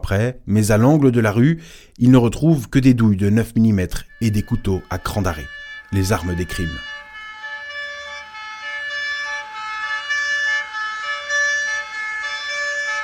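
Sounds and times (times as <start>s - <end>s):
speech: 0.0s - 6.9s
low rumble of traffic: 3.2s - 13.0s
police car and ambulance sirens wailing: 3.3s - 13.0s.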